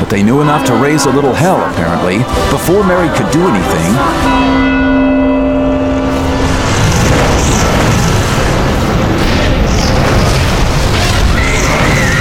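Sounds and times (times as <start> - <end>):
speech: 0.1 - 4.5
ringing bell-like tone: 0.2 - 7.5
fire and brimstone erupting from a cauldron with rumbling crackling roar: 6.0 - 12.1.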